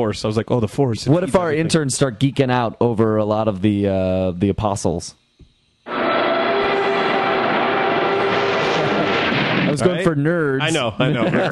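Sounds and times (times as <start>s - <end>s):
speech: 0.0s - 5.2s, 9.7s - 11.4s
car taking off with sustained engine roar: 5.9s - 9.8s
laughter: 10.6s - 11.4s.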